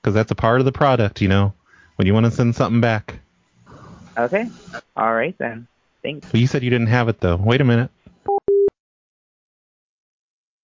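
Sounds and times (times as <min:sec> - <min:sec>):
speech: 0:00.0 - 0:03.2, 0:04.2 - 0:08.0
steady clear telephone beep of a busy or disconnect signal: 0:08.3 - 0:08.7.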